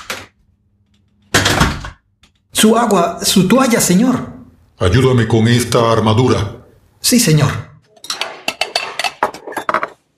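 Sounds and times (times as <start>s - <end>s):
speech: 2.6s - 7.7s
cups and plates clinking as they are handled in a barracks: 7.9s - 10.1s.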